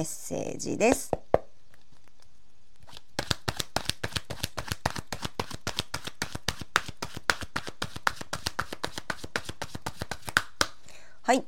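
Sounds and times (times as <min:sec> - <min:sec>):
speech: 0:00.0 - 0:01.2, 0:11.3 - 0:11.4
oracle cards shuffled by hand: 0:01.7 - 0:10.6.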